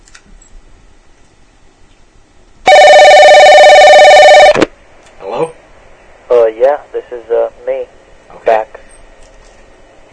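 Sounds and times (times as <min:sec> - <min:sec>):
telephone ring tone of an outgoing call to a phone directory service: 0:02.7 - 0:04.6.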